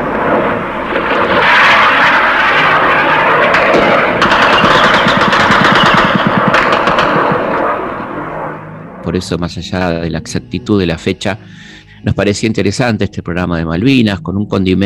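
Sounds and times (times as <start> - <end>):
anti-aircraft gunfire: 0.0 - 8.8
aircraft engines roaring overhead: 0.0 - 12.2
speech: 9.1 - 14.8.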